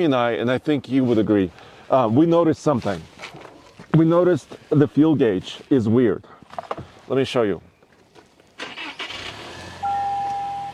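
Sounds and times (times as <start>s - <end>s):
speech: 0.0s - 3.1s, 3.9s - 7.7s
truck engine cranking, starting and idling: 8.6s - 10.7s.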